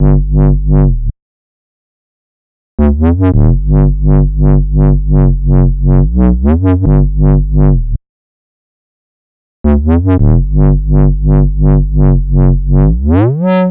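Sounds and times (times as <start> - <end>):
140 BPM dubstep bass loop in G major: 0.0 - 1.1, 2.8 - 8.0, 9.7 - 13.6.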